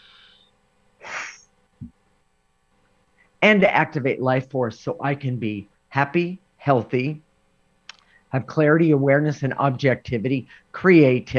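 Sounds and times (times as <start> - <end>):
speech: 3.4 - 7.2, 8.3 - 11.3
person taking a breath: 8.0 - 8.3.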